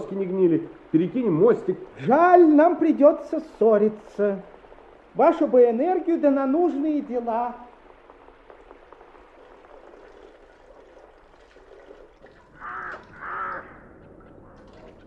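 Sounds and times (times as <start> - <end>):
steady bubbling liquid-like noise: 0.0 - 15.0
speech: 0.1 - 4.5, 5.2 - 7.7
crow cawing: 12.6 - 14.6.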